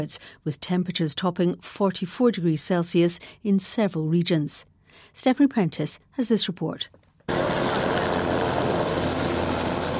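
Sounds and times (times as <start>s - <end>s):
speech: 0.0s - 8.3s
firefighting helicopter rotor roaring overhead: 7.3s - 9.9s.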